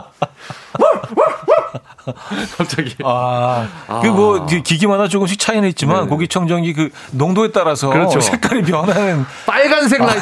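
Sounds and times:
dog barking: 0.8 - 1.8
speech: 2.1 - 10.2.

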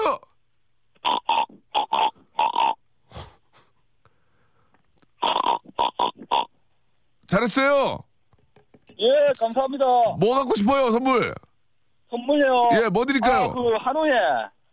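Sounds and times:
caller on the phone imitating pig oinks: 1.0 - 2.8, 5.2 - 6.6
speech: 7.4 - 8.1, 9.0 - 11.4, 12.1 - 14.6.

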